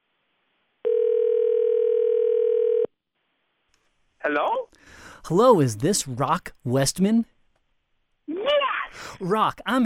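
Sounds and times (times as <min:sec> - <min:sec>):
steady loud telephone tone: 0:00.8 - 0:02.9
speech: 0:04.3 - 0:07.3, 0:08.9 - 0:09.8.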